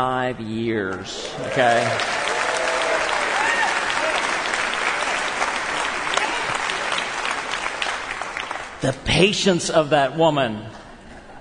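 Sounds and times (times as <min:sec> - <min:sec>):
speech: 0:00.0 - 0:02.3, 0:08.8 - 0:10.8
crowd applauding: 0:01.2 - 0:09.0.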